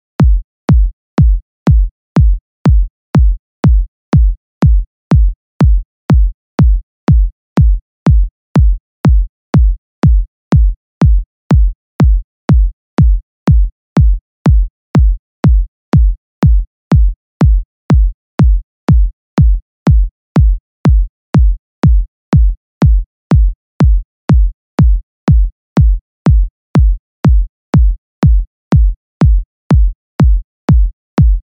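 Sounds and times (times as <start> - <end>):
122 BPM kick drums: 0.0 - 31.4.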